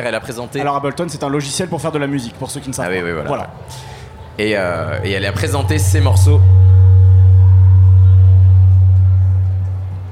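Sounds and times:
speech: 0.0s - 6.6s
low-pitched audio feedback tone: 4.4s - 10.1s.

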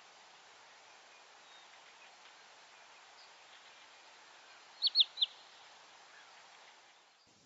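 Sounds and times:
faint background hiss: 0.0s - 7.4s
Wood Sandpiper call of downslurred notes: 4.8s - 5.5s.

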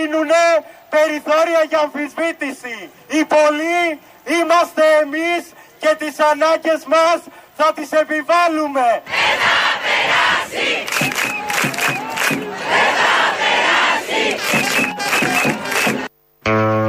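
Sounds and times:
speech: 0.0s - 11.7s
large protest crowd chanting a slogan in a central square in Athens Greece: 9.0s - 16.1s.

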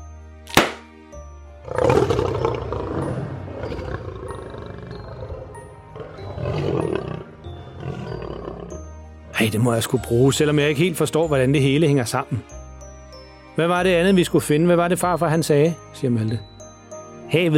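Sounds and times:
sharp crinkling snap: 0.5s - 1.0s
several lions roaring together: 1.6s - 8.8s
speech: 9.4s - 12.6s, 13.6s - 16.5s, 17.3s - 17.5s.

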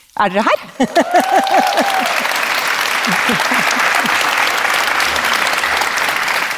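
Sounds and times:
speech: 0.2s - 2.4s, 3.1s - 4.2s
laughter: 0.7s - 6.5s
live audience applause: 0.7s - 6.5s
audience whoops and cheers: 0.8s - 4.2s.

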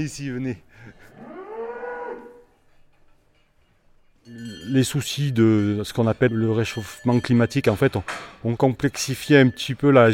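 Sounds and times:
speech: 0.0s - 1.4s, 4.2s - 10.1s
suckler cow mooing: 1.1s - 2.4s.

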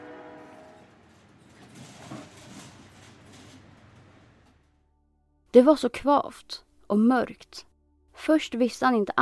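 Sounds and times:
freight train rattling and rumbling along the tracks: 0.0s - 4.7s
brief clunk: 0.6s - 4.8s
speech: 5.5s - 9.2s.

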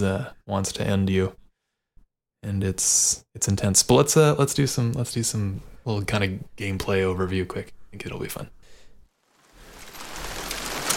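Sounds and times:
speech: 0.0s - 1.4s, 2.4s - 8.6s
steady hiss of falling rain in a video game set in a bayou: 9.2s - 10.9s.

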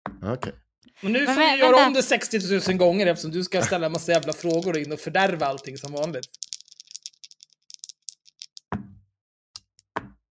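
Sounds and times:
speech: 0.2s - 6.4s
die tumbling down through a dice tower: 3.7s - 8.7s.

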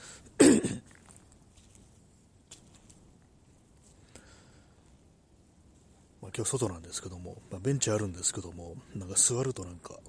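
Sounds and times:
throat clearing: 0.4s - 0.9s
speech: 6.4s - 10.0s.

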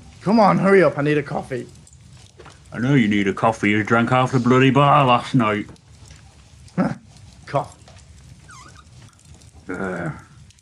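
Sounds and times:
faint noise: 0.0s - 10.6s
speech: 0.2s - 1.8s, 2.7s - 5.8s, 6.8s - 7.8s, 9.7s - 10.2s
voice imitating a growl: 6.8s - 7.1s, 9.6s - 10.5s.

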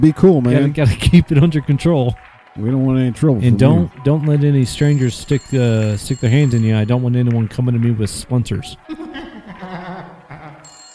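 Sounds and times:
speech: 0.0s - 9.8s
telephone ringing with a warbling trilling tone: 4.7s - 7.3s, 10.7s - 10.9s
laughter: 7.7s - 10.7s.

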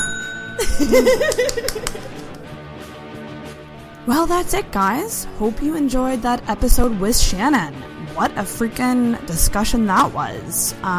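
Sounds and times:
bell ringing: 0.0s - 1.4s
speech: 0.6s - 2.1s, 4.0s - 10.9s
people laughing: 0.6s - 2.4s.

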